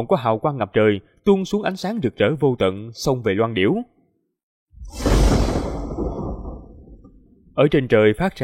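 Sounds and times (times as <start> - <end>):
speech: 0.0 - 4.0, 7.6 - 8.4
arrow shot into the sky whooshing through the air: 4.8 - 7.2.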